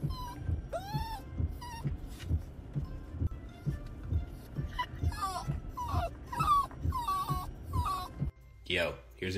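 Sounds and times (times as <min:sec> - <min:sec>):
dog yipping in a parked car: 0:00.0 - 0:02.3, 0:04.6 - 0:08.3
dog with separation anxiety whimpering and whining in a parked car: 0:00.0 - 0:03.0, 0:04.4 - 0:08.4
speech: 0:08.7 - 0:09.3.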